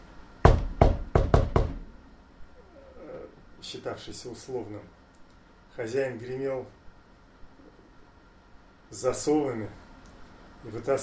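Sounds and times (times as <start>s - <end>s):
firm knocks on a door in a chant-like pattern: 0.4s - 1.9s
speech: 3.6s - 5.0s, 5.8s - 6.8s, 8.9s - 9.8s, 10.6s - 11.0s.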